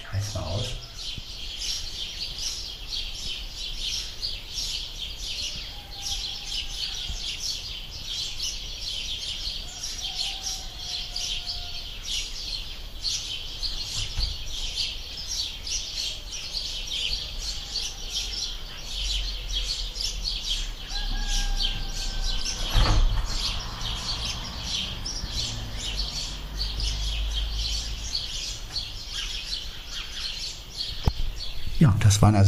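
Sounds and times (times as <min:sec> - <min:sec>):
birds chirping outdoors: 0:00.0 - 0:32.4
thump: 0:22.7 - 0:23.3
speech: 0:32.1 - 0:32.4.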